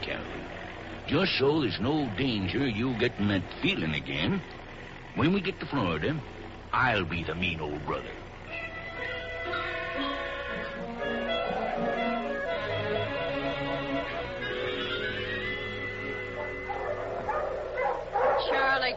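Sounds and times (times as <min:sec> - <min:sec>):
speech: 0:00.1 - 0:04.6, 0:05.2 - 0:08.2
pack of sled dogs pulling a sled barking and yipping: 0:08.6 - 0:18.9.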